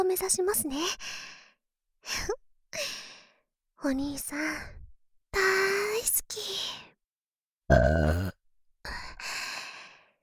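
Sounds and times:
speech: 0.0 - 1.4, 2.0 - 3.0, 3.8 - 6.9, 7.7 - 8.4
loud croaky burp: 7.7 - 8.4.

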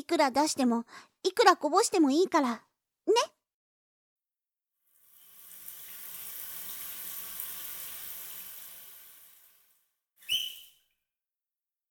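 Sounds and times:
speech: 0.0 - 3.4
shower spraying running water: 4.8 - 10.8
brief sharp squeak: 10.2 - 10.8.

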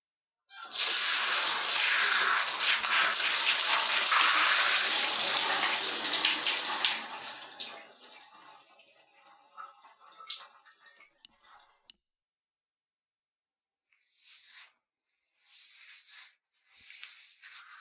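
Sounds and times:
shower water spraying over hair while rinsing: 0.6 - 7.8.

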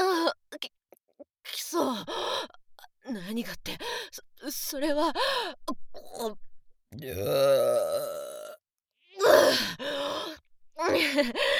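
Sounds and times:
short breathy vocal noises and gasps: 1.9 - 2.9, 3.8 - 4.2, 5.1 - 5.7, 9.2 - 11.5
speech: 3.1 - 8.2, 9.5 - 11.5
long loud drawn-out burp: 7.0 - 8.6.

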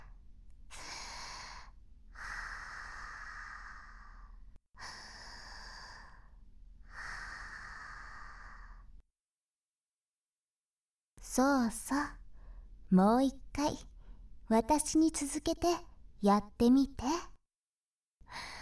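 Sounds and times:
deep breathing: 0.0 - 9.0, 12.2 - 12.8, 13.9 - 14.4
speech: 11.4 - 12.2, 12.9 - 13.9, 14.5 - 17.3.

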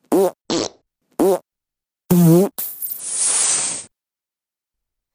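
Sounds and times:
wet sputtering fart noises made into the listener's ear: 0.0 - 1.4, 2.1 - 3.9.

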